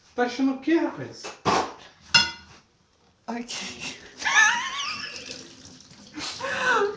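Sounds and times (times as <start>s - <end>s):
speech: 0.2s - 1.4s, 3.3s - 4.0s
cold tap water running and splashing in a sink during hand dishwashing: 4.8s - 6.9s.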